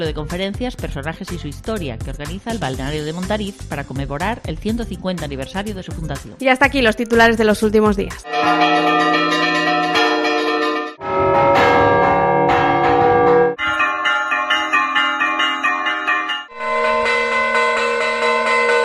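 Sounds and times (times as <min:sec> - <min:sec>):
speech: 0:00.0 - 0:09.4
church bells pealing: 0:08.2 - 0:18.8.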